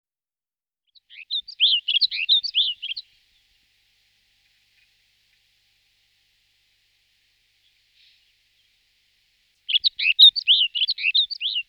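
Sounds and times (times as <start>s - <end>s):
snow bunting singing warbled phrase: 1.1s - 3.1s, 9.6s - 11.6s.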